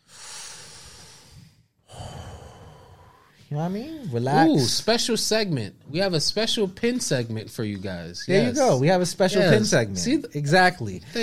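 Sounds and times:
person breathing deeply: 0:00.0 - 0:03.5
speech: 0:03.5 - 0:11.2.

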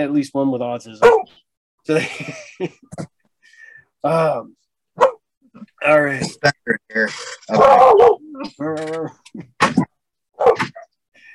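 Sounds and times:
speech: 0:00.0 - 0:03.2, 0:04.0 - 0:09.6, 0:10.4 - 0:10.8
several dogs barking: 0:01.0 - 0:01.4, 0:05.0 - 0:05.2, 0:07.5 - 0:08.3, 0:10.4 - 0:10.9
dog whining: 0:07.5 - 0:09.2.

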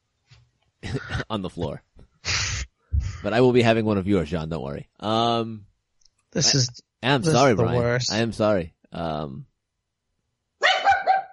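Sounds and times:
speech: 0:00.9 - 0:01.9, 0:03.2 - 0:05.7, 0:06.3 - 0:09.5
dog barking: 0:10.6 - 0:11.3.

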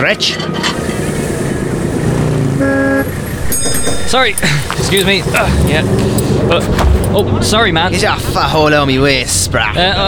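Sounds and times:
speech: 0:00.0 - 0:01.1, 0:02.6 - 0:10.0
bus engine rumble while pulling up: 0:00.0 - 0:10.0
bus horn toot: 0:02.4 - 0:03.6.

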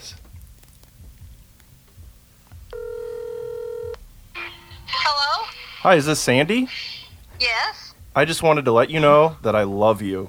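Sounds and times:
low hum: 0:00.0 - 0:10.2
ringback tone of an outgoing phone call in the earpiece: 0:02.7 - 0:04.9
speech: 0:05.8 - 0:06.9, 0:08.2 - 0:10.2.

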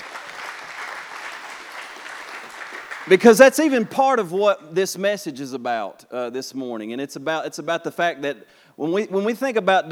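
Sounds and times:
congregation applauding at a church service: 0:00.0 - 0:04.0
speech: 0:03.1 - 0:09.9.

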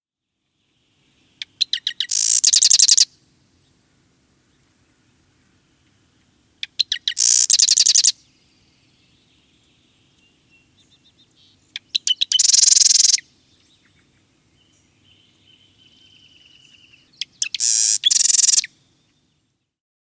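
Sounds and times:
marsh wren song: 0:00.4 - 0:19.8.

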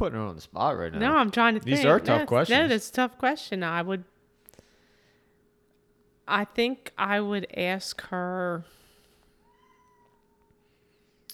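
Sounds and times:
speech: 0:00.0 - 0:04.1, 0:06.3 - 0:08.8
quiet room hum: 0:00.0 - 0:11.3
cat meowing in the room: 0:09.4 - 0:10.5.

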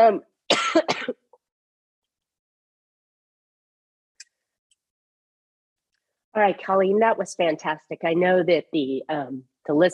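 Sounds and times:
speech: 0:00.0 - 0:01.2, 0:06.4 - 0:09.9
person coughing: 0:00.5 - 0:01.3.

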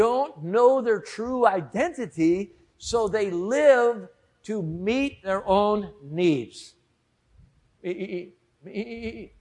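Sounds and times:
speech: 0:00.0 - 0:06.8, 0:07.8 - 0:09.3
person imitating sheep bleats: 0:07.9 - 0:09.3.

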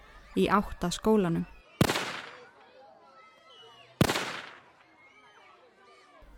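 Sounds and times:
speech: 0:00.4 - 0:01.6
rifle shots fired from a home window: 0:01.8 - 0:02.5, 0:04.0 - 0:04.7.

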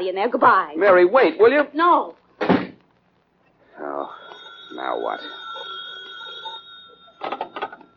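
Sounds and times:
speech: 0:00.0 - 0:02.2, 0:04.0 - 0:05.4
faint room noise: 0:00.0 - 0:07.9
steady high electrical hum: 0:00.0 - 0:07.9
telephone ringing with bright rapid bell trills: 0:03.7 - 0:07.9.

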